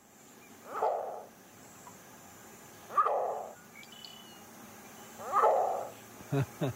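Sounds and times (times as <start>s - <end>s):
green heron squawking: 0.6s - 1.3s, 2.9s - 3.6s, 5.2s - 5.9s.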